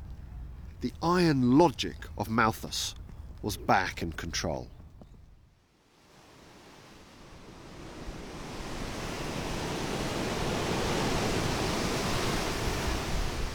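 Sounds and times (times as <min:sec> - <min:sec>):
speech: 0:00.8 - 0:04.8
ocean waves breaking on a beach: 0:05.8 - 0:13.5.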